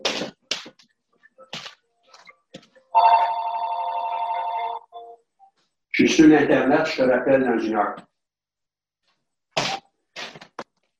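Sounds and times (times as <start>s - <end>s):
telephone bell ringing: 2.9s - 5.2s
speech: 6.0s - 8.1s.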